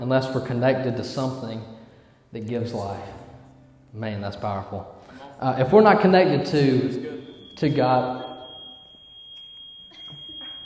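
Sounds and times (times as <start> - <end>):
speech: 0.0 - 3.2, 3.9 - 8.2
faint room noise: 0.0 - 10.6
shrill high-pitched alarm tone: 6.3 - 10.6.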